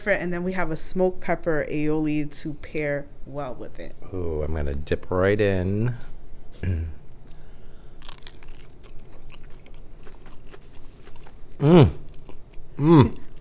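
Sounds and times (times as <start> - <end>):
speech: 0.0 - 7.0, 11.6 - 12.0, 12.8 - 13.2
eater humming appreciative murmurs: 6.6 - 7.0, 11.6 - 12.1, 12.8 - 13.3
breaded deep-fried crab lump bite being bitten and chewed: 7.2 - 13.3.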